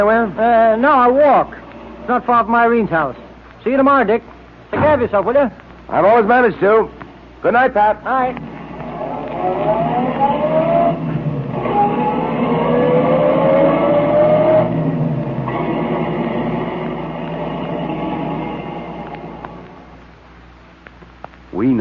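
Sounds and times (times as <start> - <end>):
speech: 0.0 - 8.5
car engine accelerating through gear shifts: 8.4 - 20.0.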